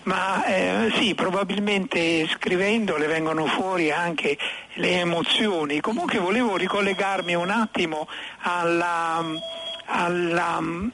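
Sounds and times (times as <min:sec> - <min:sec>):
speech: 0:00.1 - 0:10.9
telephone ringing: 0:05.9 - 0:07.8, 0:09.2 - 0:09.9.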